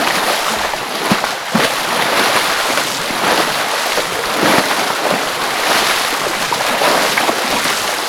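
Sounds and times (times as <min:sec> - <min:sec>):
forest waterfall splashing: 0:00.0 - 0:08.0.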